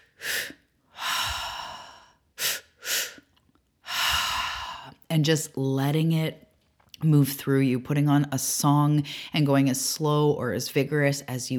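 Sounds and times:
deliberate mouth breathing in a breathwork pattern: 0:00.0 - 0:05.0
speech: 0:05.2 - 0:11.5.

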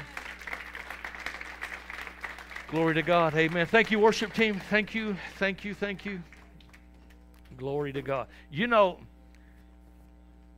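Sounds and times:
congregation clapping: 0:00.0 - 0:08.2
faint low hum: 0:00.0 - 0:10.5
speech: 0:02.7 - 0:06.4, 0:07.6 - 0:09.1.

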